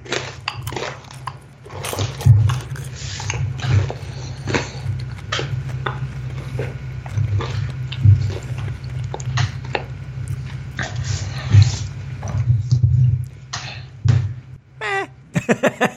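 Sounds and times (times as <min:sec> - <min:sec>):
munching chocolate popcorn: 0:00.0 - 0:15.1
low steady hum: 0:00.0 - 0:15.9
laughter: 0:14.8 - 0:15.9.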